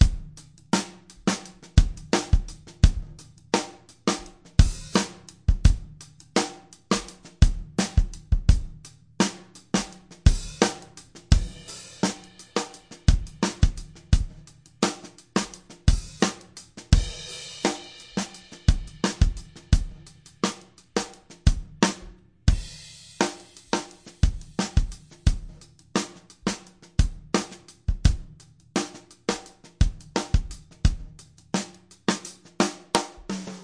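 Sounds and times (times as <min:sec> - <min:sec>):
slinky drum beat loops and breaks: 0:00.0 - 0:33.6.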